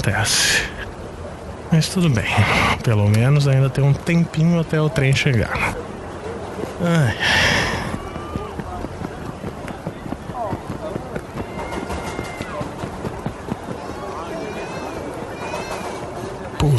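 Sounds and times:
speech: 0.0 - 0.8, 1.7 - 5.9, 6.8 - 7.6
children's hurried footsteps: 6.5 - 14.6
children shouting at a train station: 7.7 - 8.9, 11.2 - 16.5.

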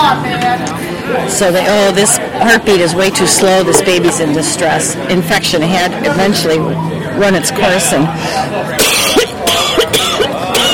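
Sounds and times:
speech: 0.1 - 9.1
person coughing in harsh dry bursts: 8.8 - 10.7.

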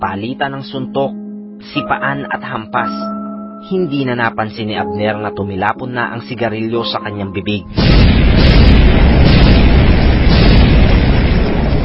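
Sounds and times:
speech: 0.1 - 9.0
explosions on a beach as a boat blows up: 7.7 - 11.8.

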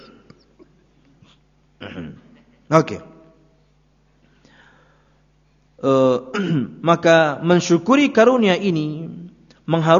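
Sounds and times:
rough cough: 1.8 - 2.6, 6.3 - 6.7
speech: 1.9 - 3.1, 5.8 - 9.9.

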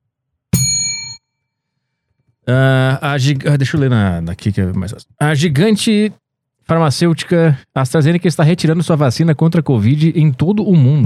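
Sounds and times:
small bell chime used as a sound effect: 0.6 - 1.4
speech: 2.5 - 11.0.

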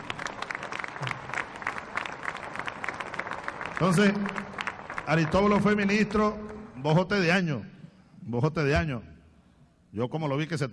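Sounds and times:
crowd applause at a political party's founding congress in Caracas: 0.0 - 6.8
speech: 3.8 - 4.5, 5.1 - 9.1, 9.9 - 10.7.

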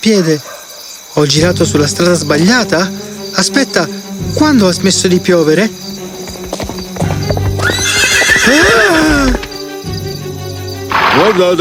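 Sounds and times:
speech: 0.0 - 0.6, 1.2 - 6.0, 8.5 - 8.8, 11.2 - 11.5
horse's hooves clip-clopping on a street: 5.3 - 9.7
horse whinnying: 6.2 - 9.6.

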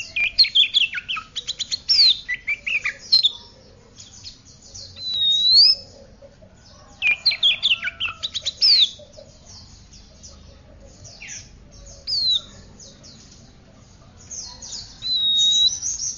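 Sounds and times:
Oriental magpie-robin singing: 0.0 - 16.1.

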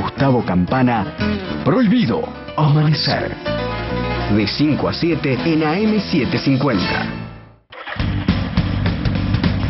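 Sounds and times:
speech: 0.2 - 3.5, 4.3 - 7.2
new nationally made motorcycle engine starting and running: 7.7 - 9.6.

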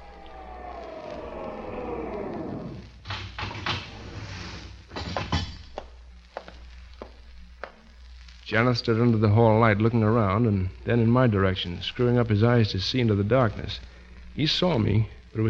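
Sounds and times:
elevator humming mechanical whine as it slows to a stop: 0.0 - 3.0
speech: 8.5 - 15.4.

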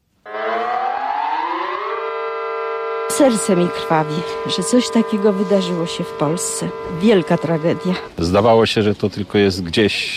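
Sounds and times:
air-raid alarm siren wailing in Lublin at a noon funeral ceremony: 0.2 - 8.1
speech: 3.2 - 10.1.

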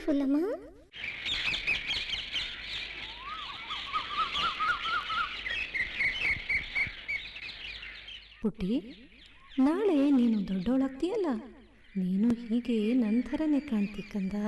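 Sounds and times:
speech: 0.0 - 1.3, 8.4 - 14.4
birds chirping: 0.0 - 14.4
warbling bird call: 1.0 - 8.2.

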